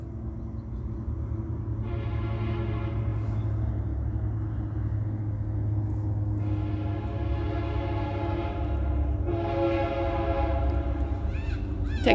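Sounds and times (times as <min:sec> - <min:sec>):
freight train rumbling at a Metrolink train station: 0:00.0 - 0:12.1
long loud freight train horn blasts: 0:01.7 - 0:03.7, 0:06.4 - 0:11.3.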